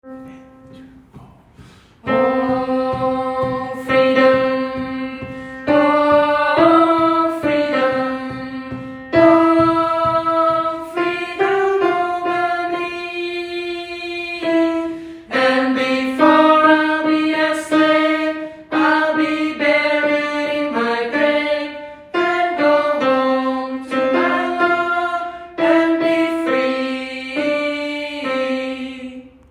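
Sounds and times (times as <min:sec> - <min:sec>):
alt gospel music: 0:00.0 - 0:29.4.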